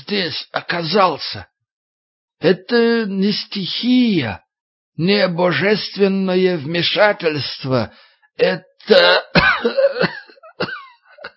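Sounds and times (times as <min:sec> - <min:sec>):
speech: 0:00.1 - 0:01.5, 0:02.4 - 0:04.4, 0:05.0 - 0:10.7
old man coughing: 0:09.0 - 0:11.3.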